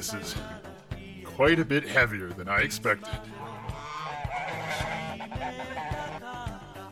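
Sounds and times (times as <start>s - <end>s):
speech: 0.0s - 0.7s, 1.4s - 3.6s
rhythmic music beat: 0.0s - 6.9s
goose honking: 3.2s - 6.3s.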